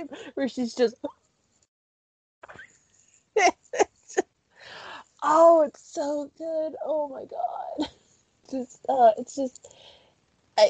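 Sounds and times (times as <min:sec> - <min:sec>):
speech: 0:00.0 - 0:01.2, 0:05.2 - 0:10.0
breathy exhale: 0:04.6 - 0:05.1, 0:09.7 - 0:10.2
person performing theatrical telenovela-style gasps: 0:04.6 - 0:05.1.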